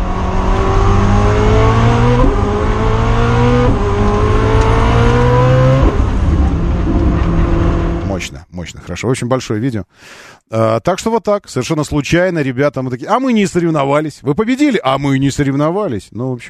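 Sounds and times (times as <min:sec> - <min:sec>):
high-performance hypercar combustion engine revving and accelerating hard: 0:00.0 - 0:08.2
speech: 0:08.7 - 0:16.4.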